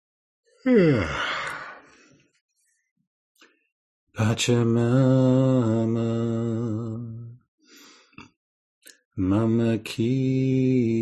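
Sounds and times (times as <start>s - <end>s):
speech: 0.6s - 1.2s, 4.2s - 7.1s, 9.2s - 11.0s
human yawn: 0.6s - 2.0s.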